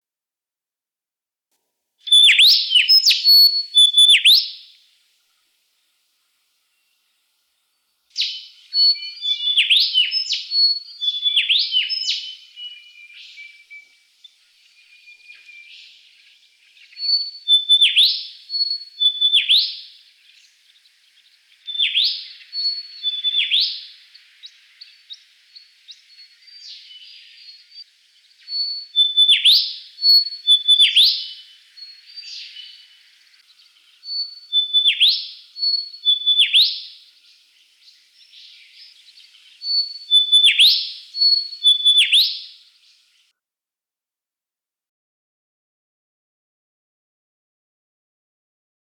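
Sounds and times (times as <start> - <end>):
pilotbird calling: 2.1 - 4.8, 8.2 - 43.2.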